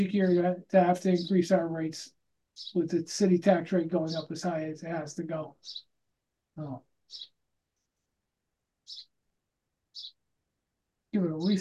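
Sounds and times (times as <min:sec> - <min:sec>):
bird chirps through open window: 0:00.0 - 0:02.0, 0:02.6 - 0:05.9, 0:06.6 - 0:07.4, 0:08.8 - 0:09.2, 0:09.9 - 0:10.2, 0:11.2 - 0:11.5
speech: 0:00.0 - 0:05.9, 0:06.6 - 0:07.3, 0:11.1 - 0:11.5
faint bird peeps: 0:02.6 - 0:02.9, 0:05.6 - 0:05.9, 0:07.1 - 0:07.3, 0:08.9 - 0:09.1, 0:10.0 - 0:10.2.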